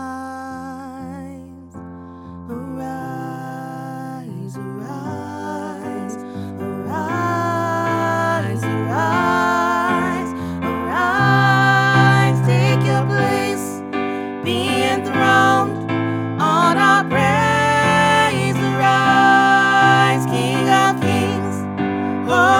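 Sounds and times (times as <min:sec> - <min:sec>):
tenor singing lead: 0:04.8 - 0:22.5.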